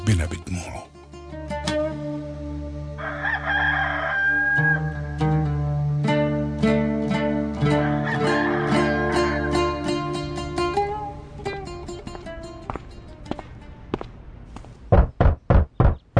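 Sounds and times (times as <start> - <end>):
soft plucked music: 0.0 - 3.0, 3.8 - 14.2
speech: 0.1 - 1.0
loud firm knocks on a door: 14.9 - 16.1.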